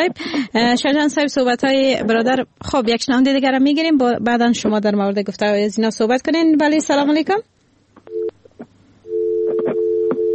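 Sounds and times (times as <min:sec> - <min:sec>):
speech: 0:00.0 - 0:07.5
telephone busy tone after a dropped call: 0:08.1 - 0:08.4, 0:09.1 - 0:10.3.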